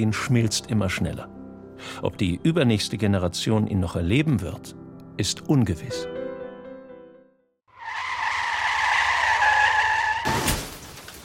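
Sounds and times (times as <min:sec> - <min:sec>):
speech: 0:00.0 - 0:06.2
car tires skidding under hard braking: 0:07.7 - 0:10.7.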